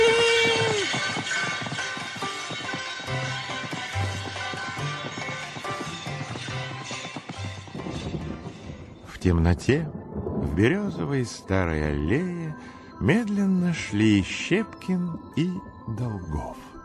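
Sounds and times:
horses pulling a carriage galloping in snow: 0.0 - 8.9
speech: 9.2 - 10.0, 10.6 - 12.4, 13.0 - 16.7.

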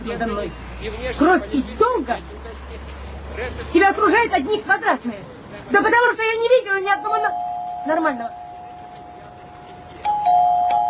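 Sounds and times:
speech: 0.0 - 8.4
electric doorbell ringing in a stage play: 7.0 - 9.0, 10.0 - 10.8.

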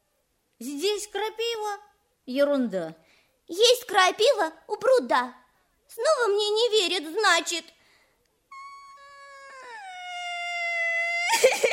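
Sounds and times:
speech: 0.6 - 7.8
child crying: 8.5 - 11.7.

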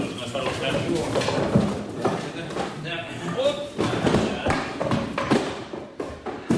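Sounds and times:
people talking: 0.0 - 5.0
wooden crate of eggs being shifted and opened: 0.4 - 2.8, 3.8 - 6.5.

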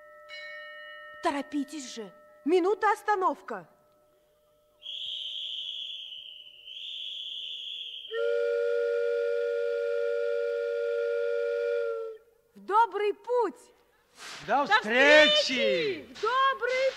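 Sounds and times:
speech: 1.2 - 3.8, 12.9 - 16.9
shrill high steam whistle: 4.8 - 12.4.

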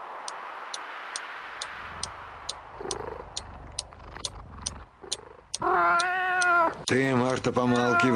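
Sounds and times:
clock ticking: 0.2 - 8.1
cat purring softly: 2.8 - 8.1
cat meowing: 5.6 - 6.9, 7.5 - 8.1
speech: 6.9 - 8.1.

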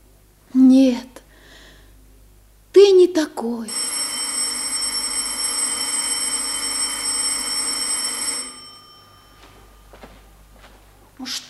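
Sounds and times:
speech: 3.2 - 3.8
electric bell ringing with a steady metallic buzz: 3.7 - 10.1.

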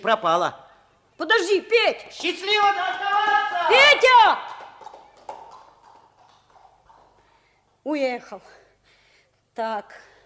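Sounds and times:
speech: 0.0 - 0.6, 1.2 - 4.5, 7.9 - 8.6, 9.6 - 10.1
horse hooves clip-clopping as rider leaves: 4.6 - 7.4.

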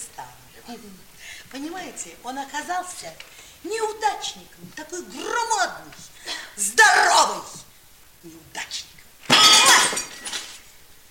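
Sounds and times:
speech: 0.7 - 8.9
falling glass shards tinkling: 9.3 - 10.6
glass bottle smashed against a bar: 9.3 - 10.6.

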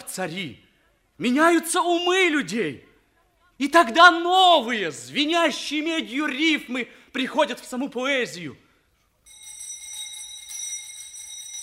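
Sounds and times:
speech: 0.2 - 2.9, 3.6 - 8.6
electric school bell ringing for end of lesson: 9.2 - 11.6.

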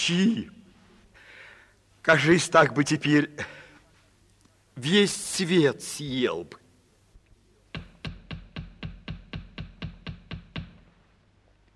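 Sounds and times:
speech: 0.0 - 0.6, 2.0 - 3.6, 4.8 - 6.6
sharp knocks on a door: 7.8 - 10.9.

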